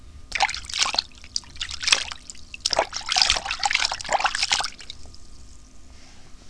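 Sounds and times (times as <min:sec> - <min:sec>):
hand splashing water: 0:00.3 - 0:05.4.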